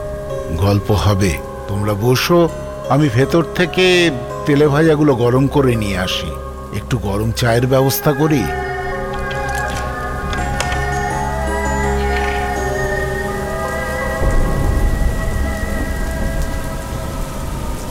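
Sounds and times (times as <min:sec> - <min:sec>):
heavy rain: 0:00.0 - 0:17.8
speech: 0:00.6 - 0:08.7
thunder rumble: 0:08.5 - 0:17.8.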